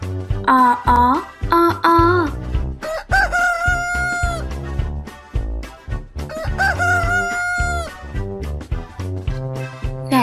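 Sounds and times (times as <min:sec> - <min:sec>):
busy rhythmic musical backing: 0:00.0 - 0:10.2
speech: 0:00.5 - 0:02.3
rooster crowing: 0:02.8 - 0:04.5, 0:06.3 - 0:08.0.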